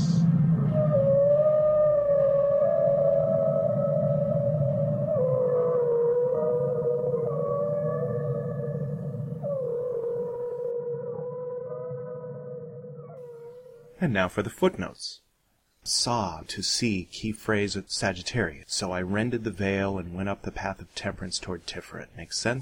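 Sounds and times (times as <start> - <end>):
deep rumbling underwater drone: 0.0 - 13.5
whale song: 0.0 - 14.0
speech: 14.0 - 15.2, 15.8 - 22.5.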